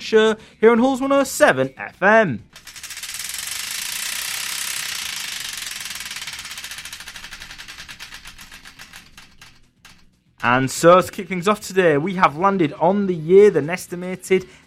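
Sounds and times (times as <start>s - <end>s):
speech: 0.1s - 2.6s, 10.4s - 14.6s
prize wheel spinning with pointer clattering against pegs: 1.2s - 12.3s.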